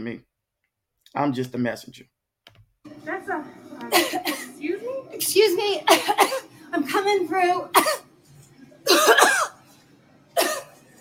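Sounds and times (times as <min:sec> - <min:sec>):
speech: 0:00.0 - 0:00.3, 0:01.1 - 0:02.1, 0:02.8 - 0:08.1, 0:08.9 - 0:09.6
woman deliberately coughing at customers in a supermarket: 0:03.9 - 0:04.6, 0:05.8 - 0:06.5, 0:07.7 - 0:08.1, 0:08.8 - 0:09.6, 0:10.4 - 0:10.8.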